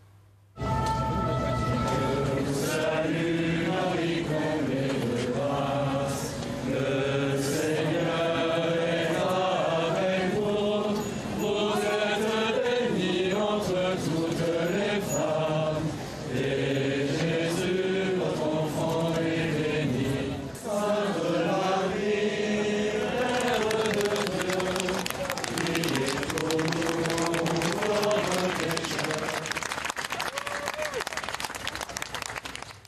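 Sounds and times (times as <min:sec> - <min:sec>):
large crowd singing in unison: 0:00.6 - 0:29.7
crowd clapping and applauding: 0:23.1 - 0:32.8.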